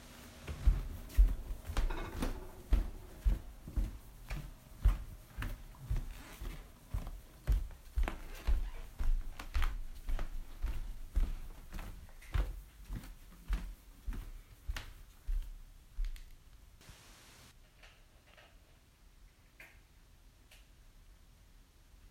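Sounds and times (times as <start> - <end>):
walking on wood floor: 0.3 - 16.4.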